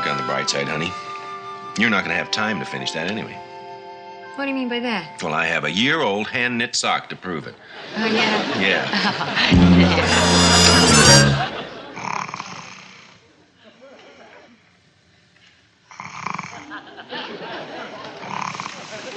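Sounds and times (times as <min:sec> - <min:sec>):
speech: 0:00.3 - 0:01.1, 0:01.8 - 0:03.5, 0:04.4 - 0:11.5
laughter: 0:07.7 - 0:12.0, 0:16.6 - 0:19.1
loud buzzing snore from a small male sleeper: 0:09.5 - 0:13.2, 0:15.9 - 0:16.7, 0:18.2 - 0:19.0.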